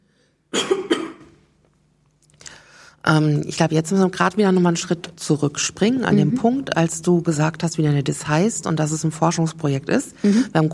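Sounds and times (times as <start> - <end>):
person coughing: 0.5 - 1.4
speech: 3.1 - 10.7.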